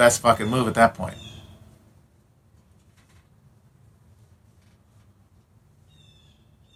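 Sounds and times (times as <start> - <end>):
speech: 0.0 - 1.2
faint bird call outside, a short high whistle: 0.0 - 1.8.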